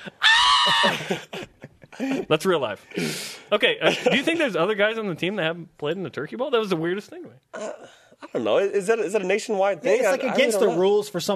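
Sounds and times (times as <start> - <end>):
person imitating a panicked shriek: 0.0 - 1.2
speech: 0.0 - 1.4, 2.0 - 11.3
laughter: 0.0 - 2.3, 3.8 - 4.6.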